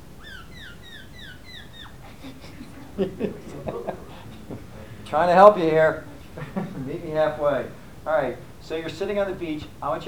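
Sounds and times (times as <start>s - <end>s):
constant hiss: 0.0s - 10.0s
faint murmurs: 0.0s - 10.0s
voice imitating seagull calls: 0.1s - 4.6s
laughter: 1.8s - 10.0s
speech: 3.0s - 4.1s, 5.1s - 6.1s, 6.8s - 10.0s.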